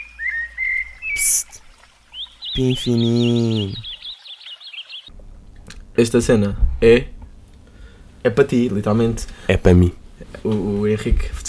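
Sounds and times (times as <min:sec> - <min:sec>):
small bird chirping in a high warbling run: 0:00.0 - 0:05.2
speech: 0:02.6 - 0:03.9, 0:06.0 - 0:07.2, 0:08.2 - 0:11.4
low rumble: 0:05.1 - 0:11.4.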